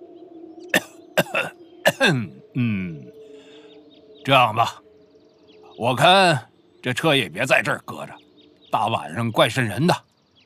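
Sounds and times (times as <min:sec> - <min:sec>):
deep-voiced man coughing: 0:00.7 - 0:03.0
deep-voiced man clearing his throat: 0:00.7 - 0:03.1
speech: 0:01.4 - 0:03.2, 0:04.2 - 0:04.8, 0:05.8 - 0:10.1.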